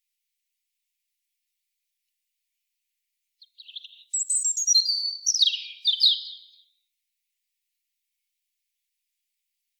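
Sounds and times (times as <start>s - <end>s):
European robin Erithacus rubecula song: 3.4s - 6.8s.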